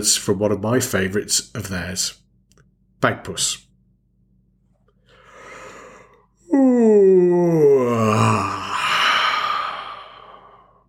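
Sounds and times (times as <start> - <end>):
speech: 0.0 - 2.2, 3.0 - 3.7, 6.5 - 8.6
long drawn-out yawn: 5.1 - 10.8.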